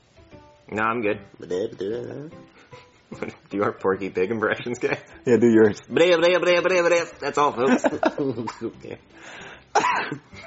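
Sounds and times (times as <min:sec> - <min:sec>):
speech: 0:00.7 - 0:02.5, 0:03.1 - 0:10.4
soft murmured vocal sounds: 0:01.4 - 0:02.4
quiet breathing: 0:02.4 - 0:03.1, 0:09.1 - 0:09.7
laughter: 0:07.6 - 0:08.7
man coughing: 0:09.8 - 0:10.3.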